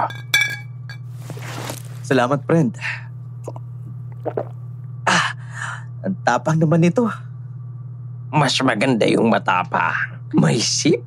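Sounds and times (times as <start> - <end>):
speech: 0.0 - 0.3, 2.1 - 3.6, 4.2 - 4.6, 6.0 - 7.3, 8.3 - 11.0
liquor glasses clinking in a toast: 0.0 - 1.1
low hum: 0.0 - 11.0.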